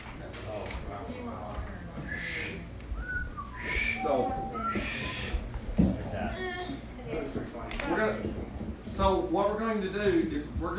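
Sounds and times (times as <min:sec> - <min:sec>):
room noise: 0:00.0 - 0:10.7
person whistling short sliding tones: 0:02.1 - 0:05.4
speech: 0:09.0 - 0:10.7.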